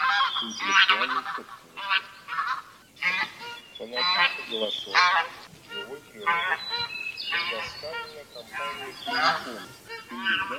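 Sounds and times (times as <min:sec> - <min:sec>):
bean goose hoarse honks: 0:00.0 - 0:10.5.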